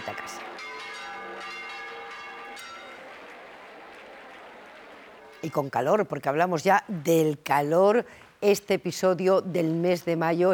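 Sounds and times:
church bells ringing during procession: 0.0 - 6.0
speech: 5.4 - 10.5.

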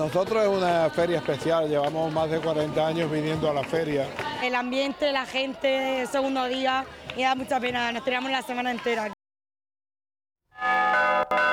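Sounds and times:
speech: 0.0 - 9.2
traditional Spanish church bell ringing at a bell-ringers' gathering in Meruelo, Cantabria: 10.6 - 11.5.

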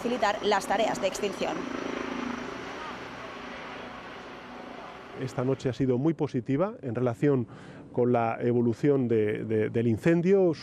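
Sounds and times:
speech: 0.0 - 1.8, 5.2 - 10.6
helicopter flying overhead: 0.0 - 5.8.

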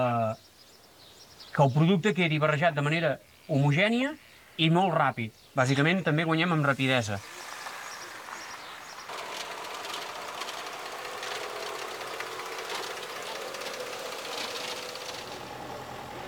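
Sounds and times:
speech: 1.6 - 7.4
tractor engine running: 6.4 - 16.2.

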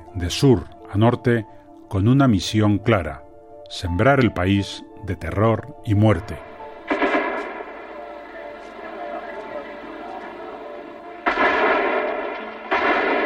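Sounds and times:
speech: 0.2 - 6.5
heavy gunfire during an attack on the government house in Chile: 6.9 - 7.8, 11.2 - 13.2.

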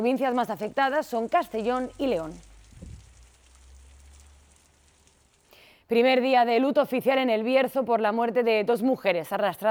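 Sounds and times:
speech: 0.0 - 2.5, 5.9 - 9.6
heavy rain pouring during a storm in Besalú, Girona: 0.0 - 5.7.

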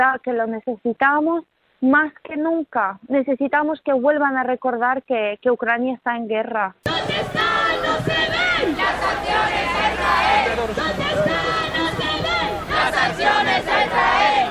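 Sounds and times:
speech: 0.0 - 6.9
large protest crowd chanting slogans in unison: 6.8 - 14.5
scattered shouts: 6.9 - 14.5.

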